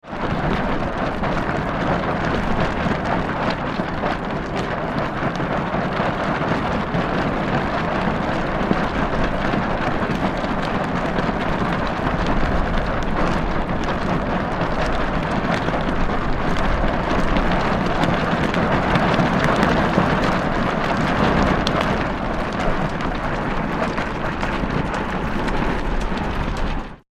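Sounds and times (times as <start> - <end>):
plastic sail flapping fast in strong wind: 0.0 - 27.0.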